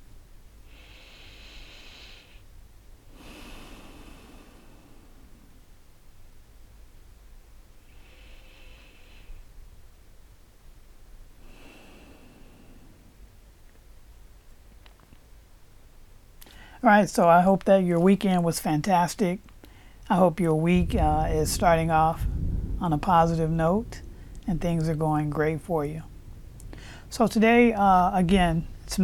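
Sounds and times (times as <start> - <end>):
faint steady hiss: 0.0 - 29.0
deep breathing during a guided meditation: 0.6 - 5.7, 7.8 - 9.6, 11.4 - 13.3, 16.4 - 16.8, 19.6 - 20.1, 23.9 - 24.5, 26.1 - 27.1
speech: 16.8 - 19.5, 20.1 - 26.1, 27.1 - 29.0.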